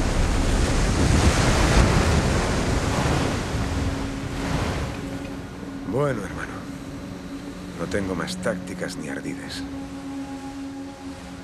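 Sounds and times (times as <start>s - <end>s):
wind noise: 0.0s - 5.9s
ship slicing through ocean waves with churning water and spray: 0.0s - 11.4s
speech: 6.0s - 6.4s, 7.9s - 10.0s.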